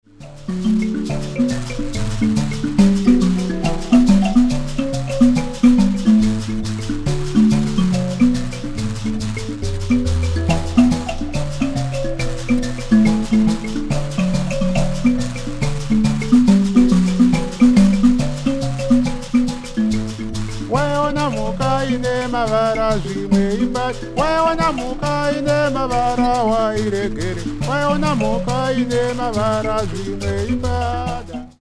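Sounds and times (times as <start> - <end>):
mbira: 0.0 - 31.6
vocals: 20.6 - 31.6.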